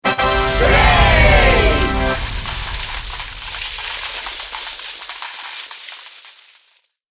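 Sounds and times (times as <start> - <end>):
triumphant brass fanfare: 0.0 - 4.6
people cheering: 0.1 - 3.8
drum roll: 0.1 - 4.8
falling money: 0.1 - 7.0.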